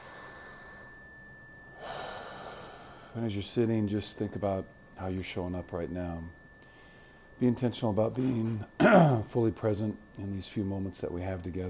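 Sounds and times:
breathy cleansing exhale: 0.0 - 1.0, 1.8 - 3.2, 6.6 - 7.4
person inhaling during a seated meditation: 0.0 - 1.0, 1.8 - 3.2, 6.6 - 7.4
speech: 3.2 - 6.4, 7.4 - 11.6.

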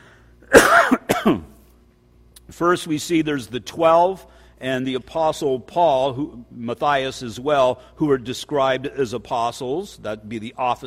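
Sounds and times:
dry cough from a person getting over a cold: 0.4 - 1.6
rough throat clearing: 0.4 - 1.6
speech: 1.2 - 1.5, 2.5 - 10.8.

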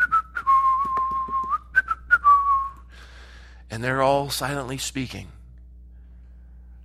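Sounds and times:
person whistling a tune: 0.0 - 2.9
soft breathy bursts: 2.9 - 3.7
speech: 3.7 - 5.4.

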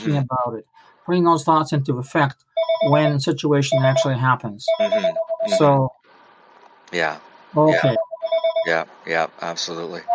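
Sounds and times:
speech: 0.0 - 6.0, 6.9 - 8.0, 8.6 - 10.1
telephone ringing: 2.6 - 3.1, 4.7 - 5.7, 7.7 - 8.8.

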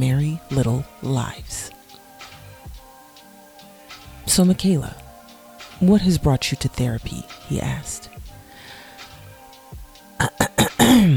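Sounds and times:
speech: 0.0 - 1.8, 4.3 - 5.0, 5.8 - 8.2
throat clearing: 10.2 - 11.1.

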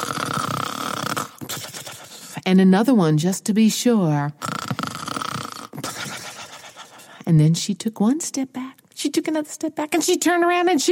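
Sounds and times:
person imitating a drawn-out rasping snore: 0.0 - 2.4, 4.4 - 7.1
speech: 2.5 - 4.5, 7.3 - 10.9.

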